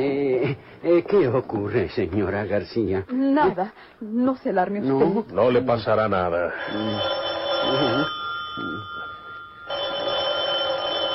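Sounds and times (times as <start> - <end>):
speech: 0.9 - 8.7
telephone bell ringing: 6.5 - 11.1.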